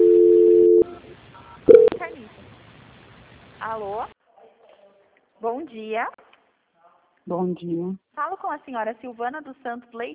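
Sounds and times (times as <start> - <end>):
telephone line tone while a bank customer's call is transferred: 0.0 - 2.0
speech: 5.4 - 6.2, 7.3 - 10.1.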